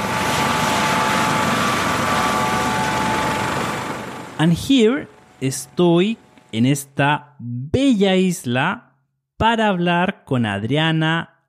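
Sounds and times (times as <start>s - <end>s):
helicopter rotor chop over broadband engine roar: 0.0s - 6.6s
speech: 4.4s - 11.3s.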